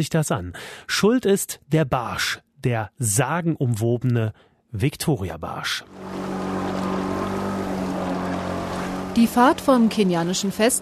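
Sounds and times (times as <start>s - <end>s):
speech: 0.0s - 6.4s, 9.2s - 10.8s
motorboat engine droning while crossing lake waves: 5.8s - 10.8s
rushing water from a motorboat crossing waves: 5.9s - 10.8s.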